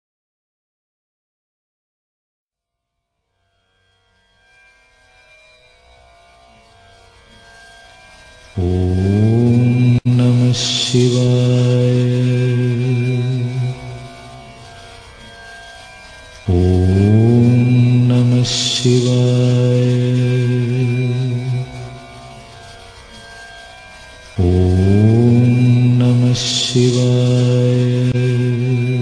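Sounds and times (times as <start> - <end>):
peaceful mantra chant: 8.5 - 14.9, 16.4 - 23.2, 24.3 - 29.0.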